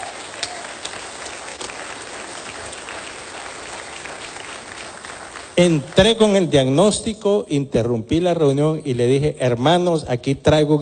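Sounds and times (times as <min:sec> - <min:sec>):
applause from a church congregation: 0:00.0 - 0:07.0
speech: 0:05.6 - 0:10.8.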